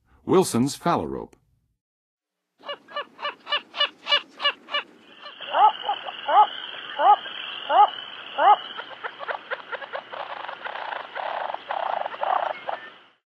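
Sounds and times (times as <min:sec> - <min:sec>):
Wilsons Phalarope calling: 0:02.6 - 0:13.1.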